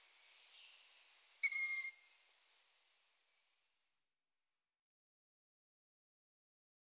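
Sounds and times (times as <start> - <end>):
long-eared owl chick giving a shrill squeaky screech: 1.4 - 2.0.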